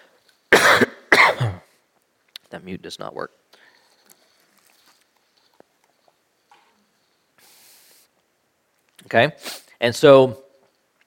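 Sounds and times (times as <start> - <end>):
person clearing throat loudly and harshly: 0.5 - 1.7
speech: 1.4 - 1.6, 2.5 - 3.4, 9.1 - 10.4.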